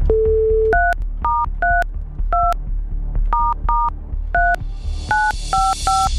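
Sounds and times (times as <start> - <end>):
touch-tone keypad beeps: 0.1 - 2.6, 3.3 - 4.6, 5.1 - 6.1.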